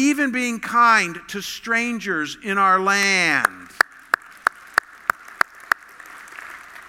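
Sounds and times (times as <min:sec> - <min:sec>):
speech: 0:00.0 - 0:03.6
sharp hand claps: 0:03.0 - 0:06.8.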